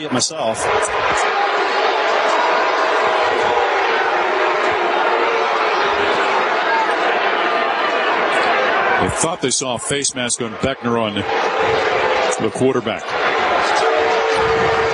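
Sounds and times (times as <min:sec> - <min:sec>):
speech: 0:00.0 - 0:01.6, 0:09.0 - 0:11.8, 0:12.4 - 0:13.2
football stadium crowd roaring and cheering: 0:00.0 - 0:14.9.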